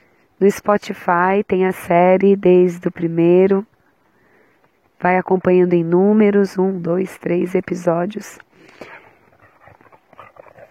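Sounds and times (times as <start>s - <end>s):
speech: 0.4s - 3.7s, 5.0s - 8.9s
dogs whimpering while playing: 8.8s - 10.6s.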